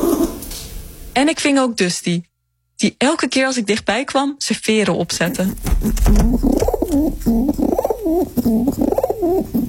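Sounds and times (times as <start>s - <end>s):
speech: 1.2s - 9.6s
pigeons cooing: 5.5s - 9.6s.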